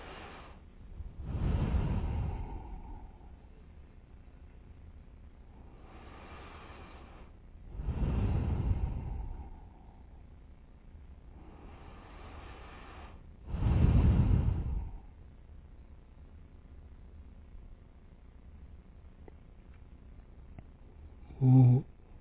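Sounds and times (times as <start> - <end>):
slow deep breathing through both nostrils in a breathing meditation: 0.0 - 3.4, 5.7 - 10.2, 11.3 - 15.1.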